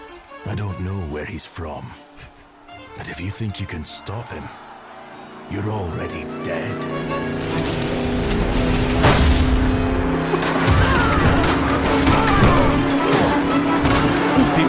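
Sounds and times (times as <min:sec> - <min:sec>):
speech: 0:00.5 - 0:02.4, 0:03.0 - 0:04.7, 0:05.5 - 0:09.3
loud steady truck engine drone: 0:02.0 - 0:14.6
sharp crashing impacts and thuds: 0:07.4 - 0:14.6.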